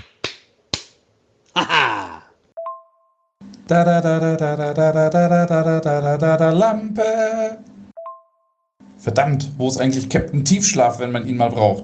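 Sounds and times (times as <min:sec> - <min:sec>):
sharp loud slaps: 0:00.0 - 0:01.0
speech: 0:03.7 - 0:07.7, 0:09.0 - 0:11.8.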